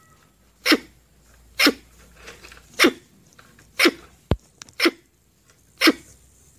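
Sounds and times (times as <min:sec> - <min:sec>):
red squirrel harsh chuff calls: 0:00.6 - 0:01.0, 0:01.6 - 0:01.9, 0:02.7 - 0:03.1, 0:03.7 - 0:05.1, 0:05.8 - 0:06.2.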